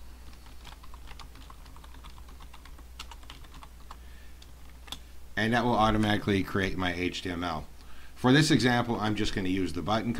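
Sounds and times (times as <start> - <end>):
typing text on a computer keyboard: 0.3 - 5.0
speech: 5.4 - 10.1.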